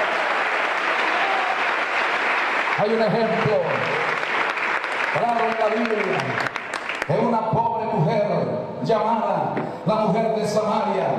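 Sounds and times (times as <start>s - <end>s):
congregation applauding at a religious service: 0.0s - 7.6s
speech: 2.8s - 4.1s, 5.2s - 7.3s, 8.9s - 11.1s.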